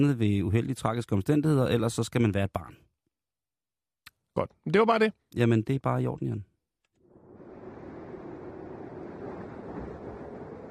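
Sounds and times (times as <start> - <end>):
speech: 0.0 - 2.9, 4.4 - 6.5
wind rushing in Alaska: 7.0 - 10.6.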